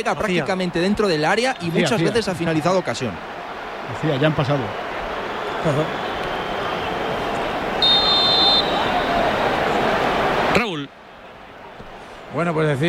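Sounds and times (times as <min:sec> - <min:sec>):
speech: 0:00.0 - 0:04.8, 0:05.6 - 0:06.1, 0:12.4 - 0:12.8
loud football crowd roar: 0:00.0 - 0:12.8
referee whistle blowing for a foul during a football match: 0:05.4 - 0:09.2.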